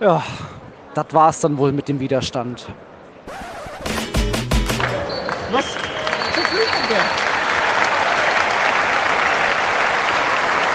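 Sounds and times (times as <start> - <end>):
speech: 0.0 - 3.5, 5.5 - 5.9
stadium crowd roaring and applauding: 3.5 - 10.7
referee's whistle at football match: 4.8 - 7.1.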